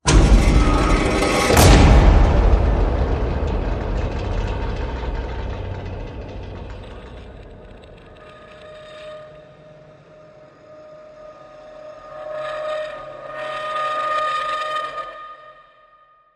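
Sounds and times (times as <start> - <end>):
heavy dark door hit: 0.0 - 10.1.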